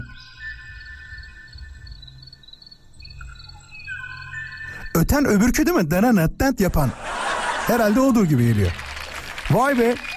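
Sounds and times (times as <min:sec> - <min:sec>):
male Kauai ʻōʻō song with high whistles: 0:00.0 - 0:05.2
speech: 0:05.0 - 0:07.1, 0:07.7 - 0:08.8, 0:09.5 - 0:10.1
laughter: 0:06.9 - 0:10.1.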